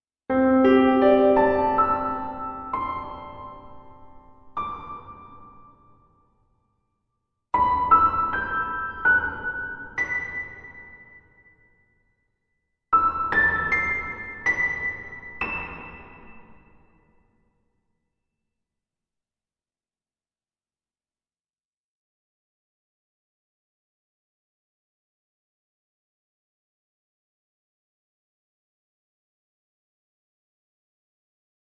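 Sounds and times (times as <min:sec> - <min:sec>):
spacey piano with ambience: 0:00.3 - 0:06.3, 0:07.6 - 0:11.6, 0:13.0 - 0:17.2.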